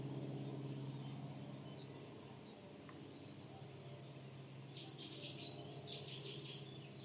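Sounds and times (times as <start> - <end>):
cuckoos calling in a wetland: 0.0 - 7.0
faint birdsong with chirps and trills in an open wetland: 0.0 - 7.0
steady low outdoor rumble in an open wetland: 0.0 - 7.0.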